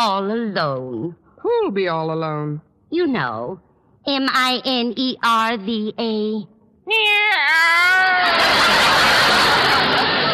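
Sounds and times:
speech: 0:00.0 - 0:10.3
female cat meowing: 0:06.9 - 0:08.3
laughter: 0:07.9 - 0:10.3.

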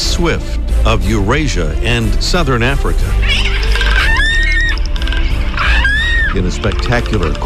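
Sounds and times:
speech: 0:00.2 - 0:03.6, 0:06.3 - 0:07.4
magnificent frigatebirds calling: 0:03.1 - 0:07.4.

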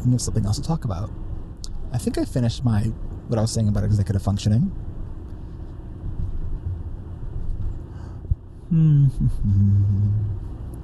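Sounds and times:
speech: 0:00.0 - 0:01.3, 0:01.9 - 0:04.9, 0:08.7 - 0:10.5
car engine drone in a car interior: 0:00.0 - 0:10.8
steady low road rumble in a car interior: 0:00.0 - 0:10.8.

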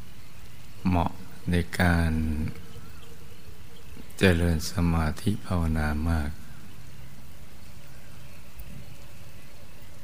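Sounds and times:
steady rain pattering on still swamp water: 0:00.1 - 0:04.9, 0:07.2 - 0:10.0
speech: 0:00.8 - 0:02.6, 0:04.2 - 0:06.4.

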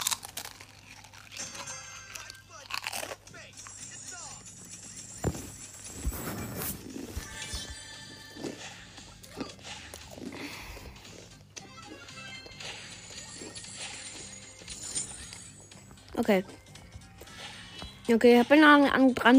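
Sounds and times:
spicy potato chips crunched while eating: 0:00.0 - 0:04.3, 0:06.8 - 0:15.9
speech: 0:16.2 - 0:16.6, 0:18.1 - 0:19.3.

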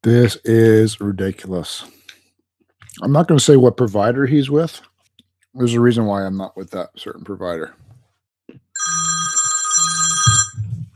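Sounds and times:
speech: 0:00.0 - 0:02.0, 0:03.0 - 0:04.9, 0:05.5 - 0:07.8
telephone ringing with an incoming call: 0:08.8 - 0:10.7.

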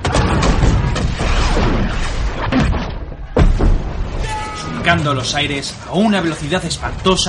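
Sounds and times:
heavy cannon shots booming: 0:00.0 - 0:04.9
speech: 0:04.9 - 0:07.2.

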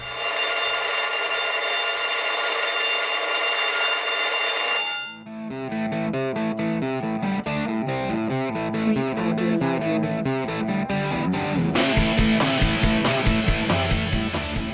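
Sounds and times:
fire station alarm buzzer blaring: 0:00.0 - 0:05.2
rhythmic electronic music: 0:05.3 - 0:14.7.

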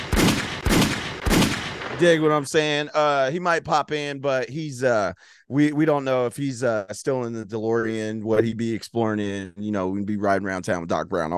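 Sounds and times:
gunshot sound effects: 0:00.0 - 0:02.4
speech: 0:02.0 - 0:11.3.

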